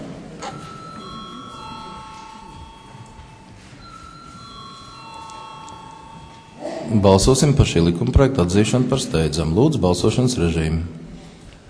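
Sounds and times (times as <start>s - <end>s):
faint hush in a parliament chamber: 0.0s - 11.6s
bell ringing in a parliament chamber before a vote: 0.4s - 8.0s
speech: 6.9s - 11.0s.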